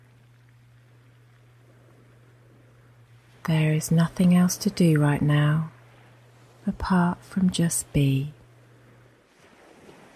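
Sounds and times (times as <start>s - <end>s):
constant low hum: 0.0s - 10.1s
soft steady wash of ocean water: 0.0s - 10.1s
speech: 3.4s - 5.7s, 6.7s - 8.4s.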